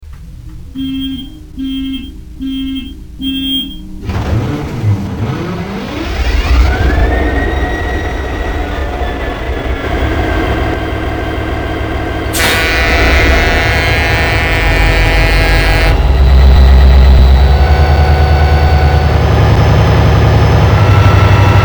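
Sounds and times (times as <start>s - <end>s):
SD70MAC diesel locomotive in the US: 0.0s - 21.6s.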